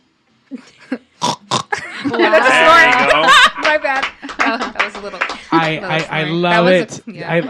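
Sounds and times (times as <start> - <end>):
speech: 0.5 - 1.1, 2.0 - 7.4
band singer imitating pig grunts: 1.2 - 1.8
laughter: 1.7 - 7.4.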